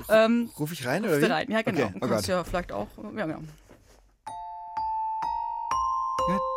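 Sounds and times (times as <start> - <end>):
speech: 0.1 - 3.6
small glockenspiel playing a slow melody: 4.3 - 6.5.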